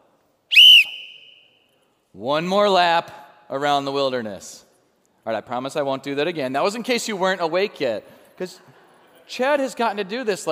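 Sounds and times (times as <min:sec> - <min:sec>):
shrill blast of a coach's whistle: 0:00.5 - 0:01.7
speech: 0:02.2 - 0:04.6, 0:05.2 - 0:08.7, 0:09.3 - 0:10.5.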